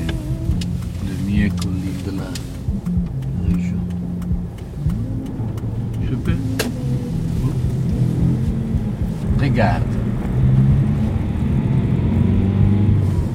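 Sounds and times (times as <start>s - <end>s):
person speaking: 0.0s - 10.1s
small sports car engine droning while driving: 0.0s - 13.3s.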